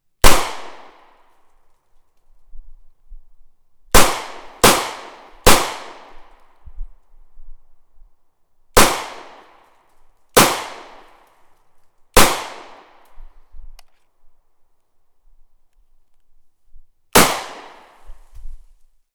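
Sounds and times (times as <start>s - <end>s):
40 Smith Wesson gunshot: 0.2s - 1.0s, 4.0s - 6.2s, 12.2s - 12.9s, 17.2s - 18.3s.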